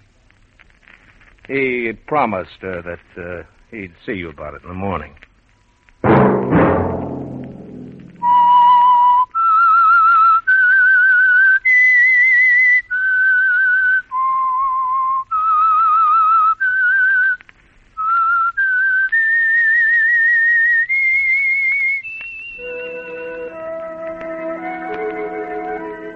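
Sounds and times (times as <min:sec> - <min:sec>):
speech: 0:01.5 - 0:05.3
brief low thud: 0:06.0 - 0:08.5
solo whistled haunting melody: 0:08.2 - 0:17.2, 0:18.0 - 0:26.1.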